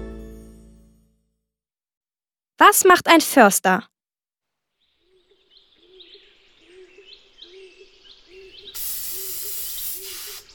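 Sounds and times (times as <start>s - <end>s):
speech: 2.6s - 3.9s
birds chirping in a forest: 4.8s - 10.5s
spray paint hissing onto a tree in a forest: 8.7s - 10.5s.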